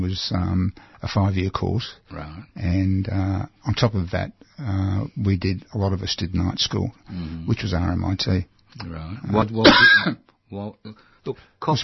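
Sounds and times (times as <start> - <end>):
speech: 0.0 - 11.8
person clearing throat roughly: 9.6 - 10.2
person coughing: 9.6 - 10.2.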